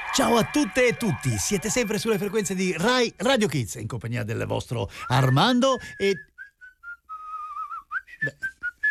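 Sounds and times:
speech: 0.2 - 6.3, 8.2 - 8.5
person whistling a bright cheerful tune: 5.0 - 8.8.

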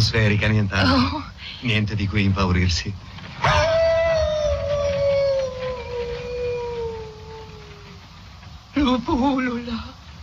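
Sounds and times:
speech: 0.0 - 3.6, 9.0 - 9.9
wolf howling: 3.4 - 8.2.

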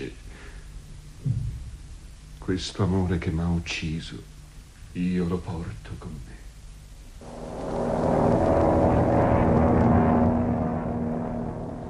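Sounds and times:
speech: 2.5 - 4.3, 5.0 - 6.4
jet airplane bound for Chile taking off: 7.2 - 11.8.

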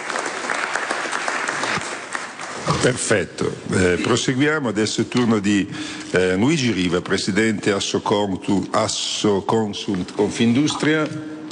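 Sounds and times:
audience applause at a business conference: 0.0 - 3.2
speech: 2.8 - 11.5.

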